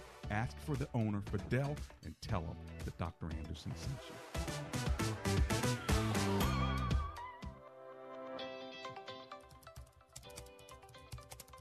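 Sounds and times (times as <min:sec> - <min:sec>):
sustained music: 0:00.0 - 0:11.5
speech: 0:00.3 - 0:05.6
fingers typing on a keyboard: 0:09.4 - 0:11.5.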